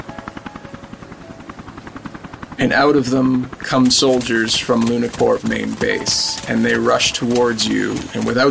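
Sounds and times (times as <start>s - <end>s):
helicopter rotor chop coming in to land: 0.0s - 8.5s
speech: 2.6s - 8.5s.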